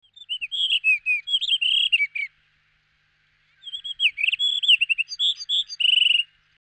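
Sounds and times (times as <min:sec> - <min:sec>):
blue rock thrush singing: 0:00.0 - 0:06.6.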